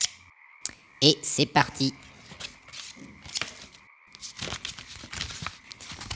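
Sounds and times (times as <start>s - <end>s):
speech: 1.0s - 2.1s
scissors cutting out a paper figure: 2.0s - 6.1s.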